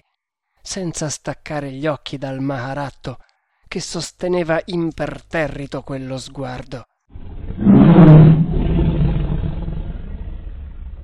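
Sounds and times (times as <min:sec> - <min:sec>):
speech: 0:00.7 - 0:06.9
tiger growling yowl: 0:07.2 - 0:11.0.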